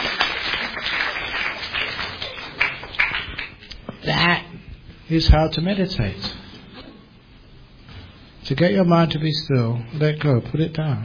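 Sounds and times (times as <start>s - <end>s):
audience clapping: 0.0s - 3.8s
speech: 5.1s - 6.4s, 8.5s - 11.0s.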